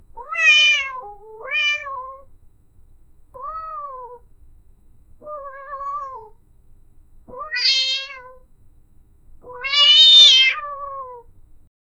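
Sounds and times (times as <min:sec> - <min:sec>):
nine-year-old white cat meowing: 0:00.2 - 0:02.4, 0:03.3 - 0:04.3, 0:05.1 - 0:06.4, 0:07.2 - 0:08.5, 0:09.4 - 0:11.4.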